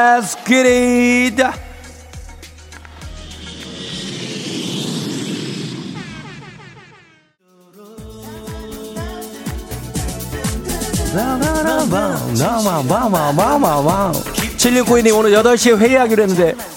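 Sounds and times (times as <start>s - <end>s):
speech: 0.0s - 1.7s, 12.3s - 16.7s
upbeat music with voices: 0.0s - 3.5s, 7.4s - 16.7s
jet engine roar of airplane taking off: 2.2s - 7.3s.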